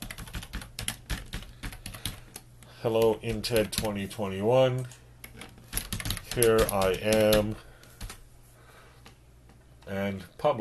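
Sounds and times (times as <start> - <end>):
keys clattering on a computer keyboard as a blog post title is typed: 0.0 - 4.0, 5.2 - 8.2
speech: 2.8 - 5.0, 6.4 - 7.7, 9.9 - 10.5.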